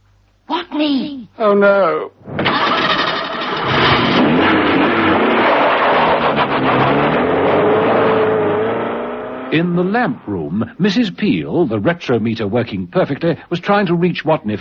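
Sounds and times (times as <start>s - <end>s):
speech: 0.8s - 2.8s, 9.5s - 14.5s
car engine cranking, starting and running: 2.3s - 10.7s.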